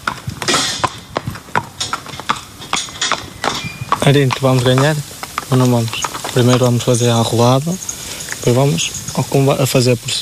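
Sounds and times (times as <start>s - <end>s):
horse hooves clip-clopping at a steady pace: 0.0s - 10.1s
speech: 4.1s - 10.1s.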